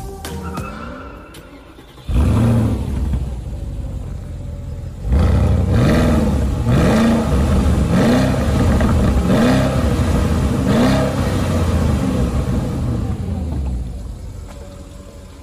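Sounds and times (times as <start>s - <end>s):
V8 SUV engine starting and revving to a soft rev limiter: 1.8s - 15.3s.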